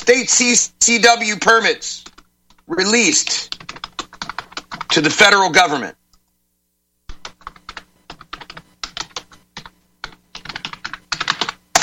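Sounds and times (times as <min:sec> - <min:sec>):
speech: 0:00.1 - 0:02.1, 0:02.7 - 0:03.8, 0:05.0 - 0:06.0
typing on computer keyboard: 0:03.5 - 0:05.0, 0:07.1 - 0:11.8.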